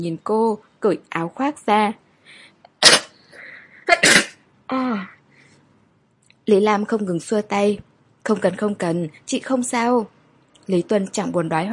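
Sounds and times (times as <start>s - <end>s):
speech: 0.0s - 3.0s, 4.7s - 5.2s, 6.5s - 11.7s
woman sneezing: 2.8s - 3.2s, 3.9s - 4.4s.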